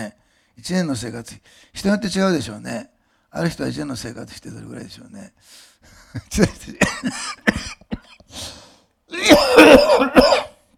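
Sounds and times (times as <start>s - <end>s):
speech: 0.0s - 10.4s
person coughing in sharp hacking fits: 6.5s - 8.4s, 9.1s - 10.6s.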